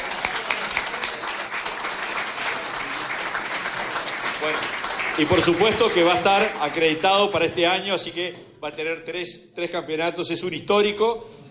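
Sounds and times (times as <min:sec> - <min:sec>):
crowd clapping: 0:00.0 - 0:07.5
speech: 0:04.4 - 0:11.4.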